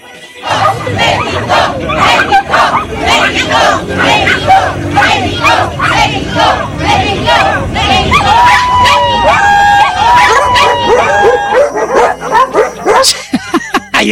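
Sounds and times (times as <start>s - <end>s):
owners and noisy crowd shouting in front of the English consulate: 0.4s - 12.9s
pack of chihuahuas barking in high yappy bursts: 0.5s - 13.2s
laughter: 7.6s - 14.1s.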